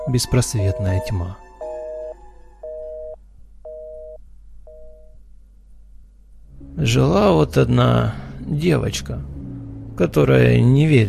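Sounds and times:
telephone busy signal beeps: 0:00.0 - 0:05.1
low constant hum: 0:00.0 - 0:11.0
speech: 0:00.1 - 0:01.4, 0:06.8 - 0:09.3, 0:10.0 - 0:11.0.

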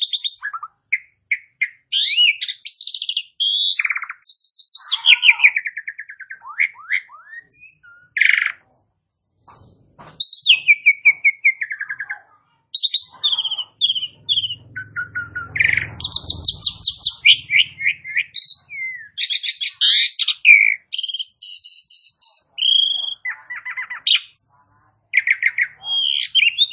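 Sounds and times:
Asian pied starling singing: 0:00.0 - 0:08.6, 0:10.2 - 0:26.7.

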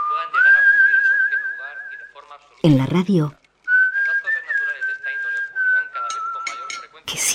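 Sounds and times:
whistled melody: 0:00.0 - 0:02.2, 0:03.7 - 0:07.0
speech: 0:02.6 - 0:03.4, 0:07.2 - 0:07.3.

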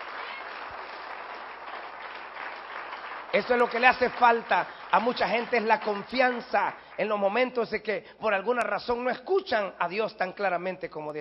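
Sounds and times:
church congregation applauding: 0:00.0 - 0:07.8
speech: 0:03.3 - 0:11.2.

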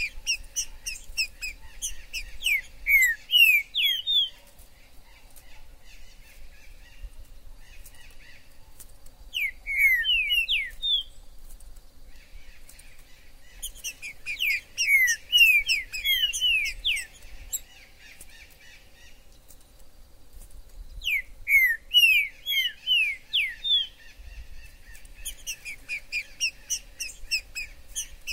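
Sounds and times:
green-winged saltator song of quick descending whistled notes in forest: 0:00.0 - 0:04.5, 0:09.3 - 0:11.3, 0:13.4 - 0:17.8, 0:20.9 - 0:28.3.

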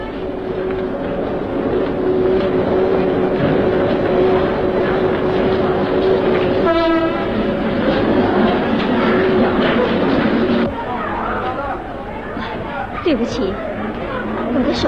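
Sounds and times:
train arriving at a station with rolling rumble: 0:00.0 - 0:14.8
train horn blast: 0:06.6 - 0:07.4.

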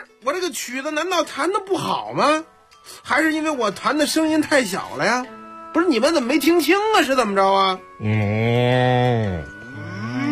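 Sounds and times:
speech: 0:00.2 - 0:09.5
cattle mooing: 0:08.0 - 0:10.2.

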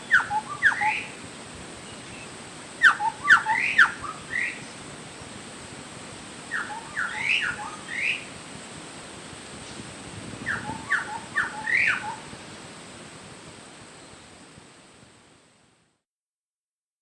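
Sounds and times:
bird song of sweet whistled notes: 0:00.0 - 0:01.2, 0:01.8 - 0:04.8, 0:06.5 - 0:08.3, 0:10.4 - 0:12.3
steady hiss: 0:00.0 - 0:16.0.

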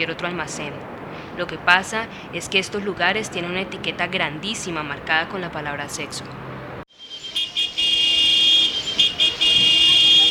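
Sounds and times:
speech: 0:00.0 - 0:06.5
busy street traffic with many cars: 0:00.0 - 0:10.2.

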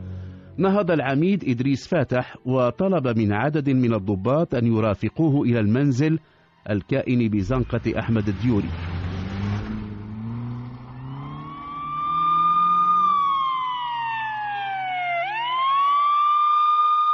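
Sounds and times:
speech: 0:00.6 - 0:09.0
low vehicle engine rumble: 0:07.3 - 0:15.1
police car siren wailing: 0:10.2 - 0:17.1.

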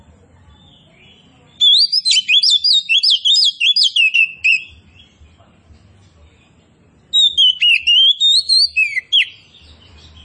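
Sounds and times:
Oriental magpie-robin kacer poci singing actively and loudly: 0:00.5 - 0:05.3, 0:07.1 - 0:10.2.

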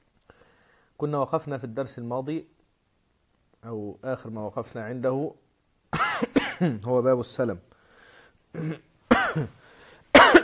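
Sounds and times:
speech: 0:01.0 - 0:02.6, 0:03.6 - 0:07.7, 0:08.5 - 0:09.6
lecturer coughing and clearing his throat: 0:06.0 - 0:06.9, 0:08.6 - 0:10.4.

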